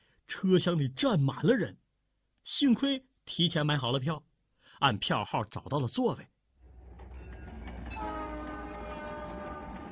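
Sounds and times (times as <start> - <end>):
speech: 0.4 - 1.8, 2.4 - 6.3
train rumbling while starting off: 6.6 - 9.9
long sustained train horn blaring: 7.8 - 9.9.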